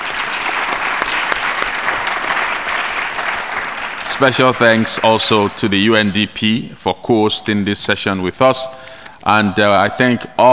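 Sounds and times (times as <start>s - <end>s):
audience applauding: 0.0s - 6.2s
speech: 4.2s - 10.5s.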